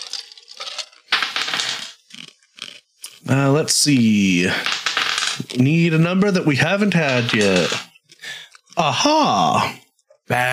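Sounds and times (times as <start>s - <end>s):
dice clattering across a hard surface: 0.0s - 3.2s, 4.4s - 8.8s
speech: 3.3s - 4.8s, 5.4s - 7.9s, 8.8s - 10.5s.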